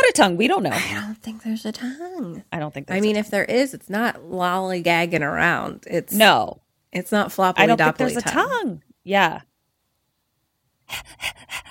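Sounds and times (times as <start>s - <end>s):
speech: 0.1s - 9.5s, 10.9s - 11.7s
person imitating a crocodile panting: 10.9s - 11.7s.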